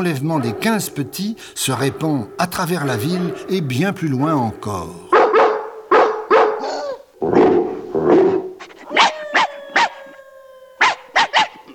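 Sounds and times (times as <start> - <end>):
speech: 0.0 - 5.1
dogs barking: 0.0 - 11.7
dog whining: 6.6 - 7.1, 7.9 - 11.7.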